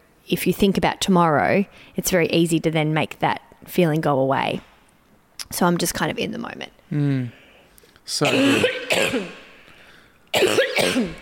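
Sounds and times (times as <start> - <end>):
speech: 0.3 - 4.7, 5.5 - 7.4, 8.0 - 9.4, 10.3 - 11.2
person coughing: 8.2 - 9.6, 10.3 - 11.2.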